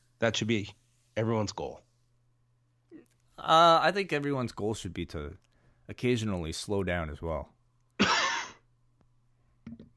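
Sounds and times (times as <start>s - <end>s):
speech: 0.2s - 1.9s, 3.4s - 7.6s
person coughing: 8.0s - 8.7s.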